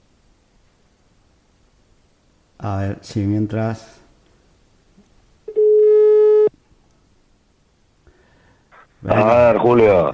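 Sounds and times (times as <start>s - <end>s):
speech: 2.6s - 4.0s, 9.0s - 10.1s
telephone line tone while calling back: 5.5s - 6.5s.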